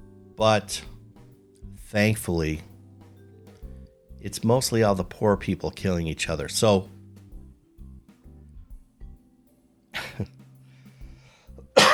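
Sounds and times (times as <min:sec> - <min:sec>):
low murmuring: 0:00.0 - 0:09.2, 0:10.0 - 0:11.9
speech: 0:00.4 - 0:00.9, 0:01.9 - 0:02.7, 0:04.2 - 0:07.0
person coughing: 0:10.0 - 0:10.3, 0:11.8 - 0:11.9.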